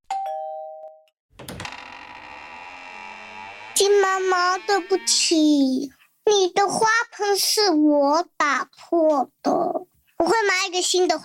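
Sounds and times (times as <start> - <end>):
doorbell two-tone ring: 0.1 - 1.1
speech: 3.8 - 11.2.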